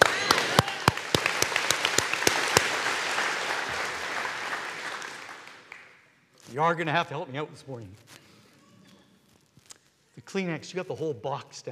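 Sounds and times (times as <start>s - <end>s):
congregation clapping in rhythm: 0.0s - 6.1s
speech: 6.5s - 8.2s, 10.3s - 11.7s.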